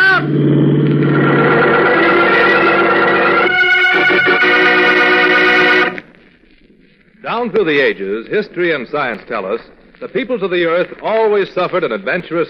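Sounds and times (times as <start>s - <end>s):
car engine revving hard as it accelerates: 0.0s - 6.0s
speech: 7.4s - 12.4s.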